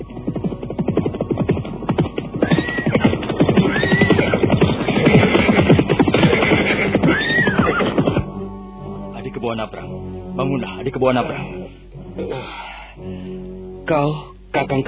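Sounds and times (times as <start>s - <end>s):
horses galloping: 0.0s - 8.3s
rapid drumming of hooves: 0.0s - 8.3s
horses whinnying shrilly: 2.2s - 8.3s
speech: 10.6s - 12.4s, 13.9s - 14.8s.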